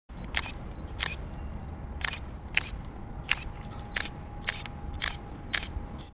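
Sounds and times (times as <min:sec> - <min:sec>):
camera shutter click: 0:00.3 - 0:01.2, 0:02.0 - 0:05.7.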